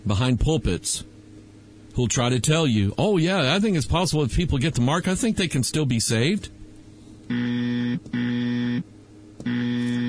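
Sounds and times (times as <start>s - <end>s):
speech: 0.1s - 1.2s, 2.0s - 6.6s, 7.3s - 10.0s
harsh electronic buzzer blasts: 7.3s - 10.0s.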